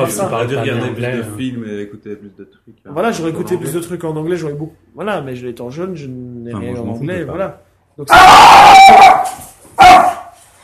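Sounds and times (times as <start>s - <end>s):
speech: 0.0s - 10.1s
dog barking: 8.1s - 10.4s.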